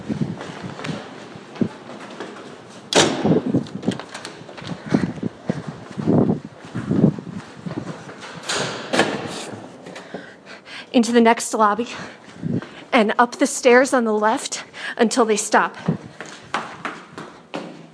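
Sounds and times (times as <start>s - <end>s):
footsteps down a long corridor: 0.0s - 13.0s, 15.6s - 17.9s
heavy door opening and swinging shut with a clunk: 0.7s - 6.3s, 6.9s - 10.3s
speech: 11.0s - 12.2s, 12.9s - 16.0s.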